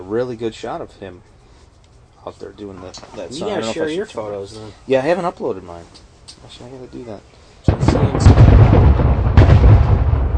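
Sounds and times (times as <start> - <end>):
speech: 0.1 - 1.3, 2.2 - 8.4
fireworks booming outside: 7.6 - 10.3.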